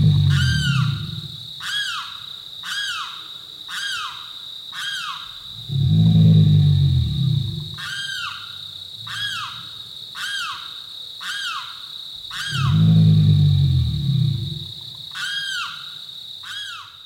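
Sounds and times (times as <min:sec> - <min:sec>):
American alligator bellowing at night in a swamp: 0:00.0 - 0:01.5, 0:05.5 - 0:08.0, 0:12.3 - 0:15.0.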